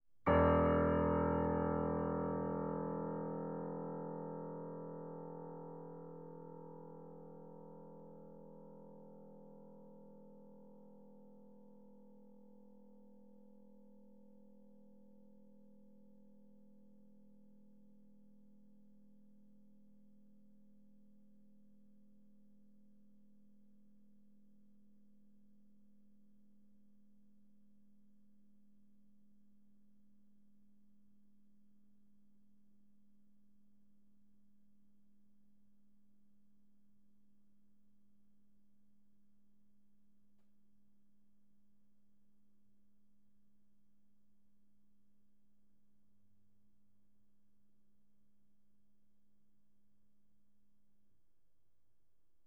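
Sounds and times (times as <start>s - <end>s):
piano note E1 played fortissimo: 0.3s - 6.2s.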